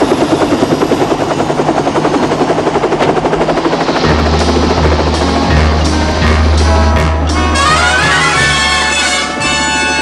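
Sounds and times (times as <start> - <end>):
helicopter rotor chop: 0.0 - 9.6
helicopter turbine whine: 0.0 - 10.0
deep rumble: 2.7 - 8.2.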